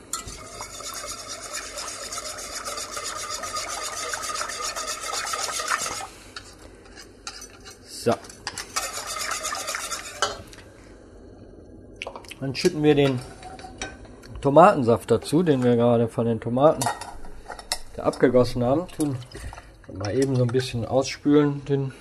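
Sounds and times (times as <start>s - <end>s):
whisk stirring a liquid mixture with water in a bowl: 0.1s - 10.4s
speech: 8.0s - 8.3s, 12.4s - 13.3s, 14.4s - 17.0s, 18.0s - 21.9s.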